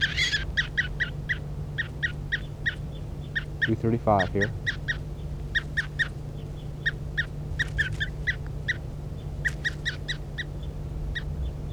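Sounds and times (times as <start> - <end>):
handled bird giving sharp high chirping calls: 0.0 - 11.7
steady low hum: 0.0 - 11.7
speech: 3.7 - 4.6.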